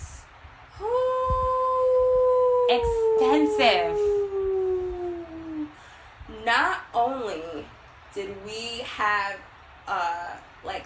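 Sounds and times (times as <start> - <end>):
whale moaning call: 1.9 - 5.8
speech: 2.7 - 4.1, 6.5 - 10.8.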